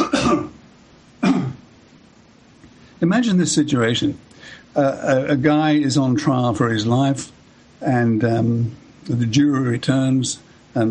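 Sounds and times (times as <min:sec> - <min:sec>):
person coughing: 0:00.0 - 0:00.6, 0:01.2 - 0:01.6
speech: 0:00.3 - 0:00.6, 0:03.0 - 0:10.8.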